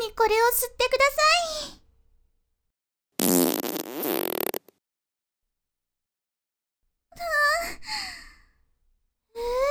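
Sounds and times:
speech: 0.2s - 1.8s
loud drawn-out fart: 3.2s - 4.8s.

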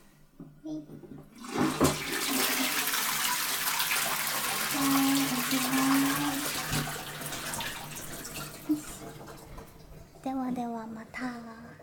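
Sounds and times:
toilet flushing: 1.2s - 10.6s.

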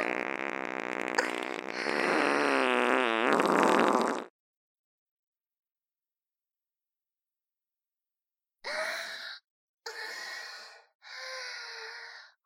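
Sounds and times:
fart: 0.0s - 4.3s.

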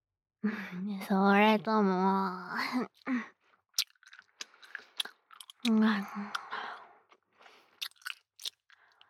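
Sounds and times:
speech: 0.4s - 3.4s, 5.6s - 6.4s
gum being chewed: 3.7s - 9.0s.

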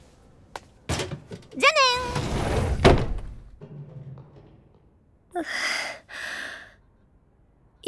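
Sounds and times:
faint rustling: 0.0s - 5.8s
desk and chair being moved with a wooden thunk: 0.6s - 5.0s
speech: 1.6s - 2.2s, 5.4s - 5.8s.

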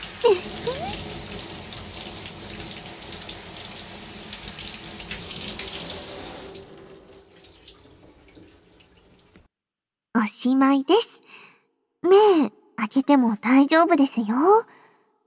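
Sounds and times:
water running from a tap rinsing hair during a hair wash: 0.0s - 9.5s
speech: 0.2s - 1.1s, 10.2s - 11.2s, 12.0s - 14.8s.

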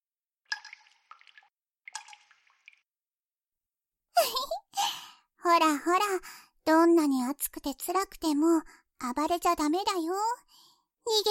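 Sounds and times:
candle wax dripping: 0.5s - 2.8s
speech: 5.5s - 11.2s.

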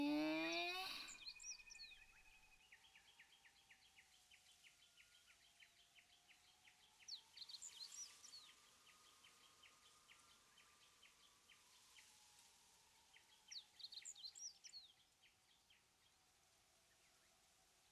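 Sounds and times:
small birds chirping at a campsite: 0.0s - 12.2s, 13.1s - 17.8s.

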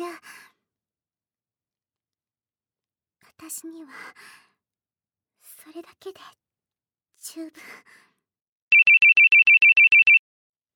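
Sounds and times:
speech: 3.4s - 4.5s, 5.6s - 6.4s, 7.2s - 8.1s
mobile phone ringtone electronic beeps: 8.7s - 10.2s.

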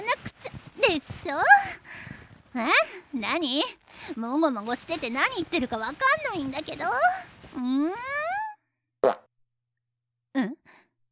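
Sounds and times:
speech: 0.9s - 1.8s, 2.6s - 8.2s
drawn-out rising fart: 9.0s - 9.3s.

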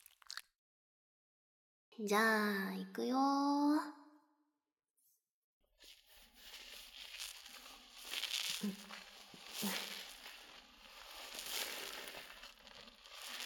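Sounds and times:
heavily lathered shampoo being scrubbed into hair: 0.0s - 0.4s, 5.8s - 13.4s
speech: 2.0s - 4.0s, 8.6s - 8.9s.

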